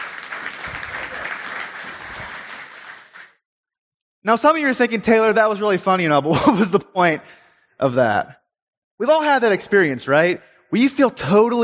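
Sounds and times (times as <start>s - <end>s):
audience applause: 0.0s - 3.4s
speech: 4.2s - 8.4s, 9.0s - 11.6s.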